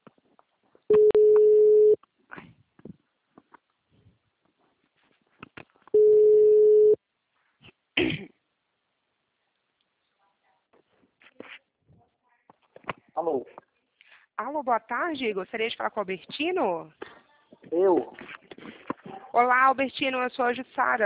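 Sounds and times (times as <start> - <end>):
ringing tone of an outgoing telephone call: 0.9 - 2.0, 6.0 - 7.0
faint throat-clearing: 8.0 - 8.4
speech: 14.6 - 17.0, 17.7 - 18.4, 19.4 - 21.0.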